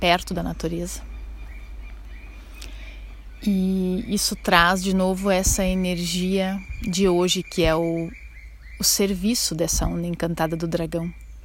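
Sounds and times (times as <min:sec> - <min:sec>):
speech: 0:00.0 - 0:01.1, 0:03.4 - 0:08.2, 0:08.8 - 0:11.2
low rumble of passing cars: 0:00.0 - 0:08.8
small birds chirping faintly in the woods: 0:00.0 - 0:11.4.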